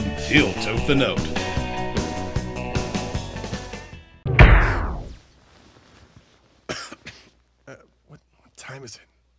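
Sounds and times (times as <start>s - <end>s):
music: 0.0s - 4.3s
speech: 0.3s - 1.4s, 8.8s - 9.1s
heavy booming thud: 4.3s - 5.2s
dry coughs: 6.7s - 7.8s.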